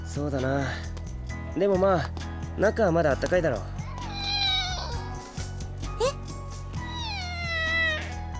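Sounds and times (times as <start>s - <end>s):
speech: 0.2s - 0.9s, 1.5s - 3.7s
kitten meowing after being stepped on: 3.9s - 5.4s, 6.8s - 8.2s.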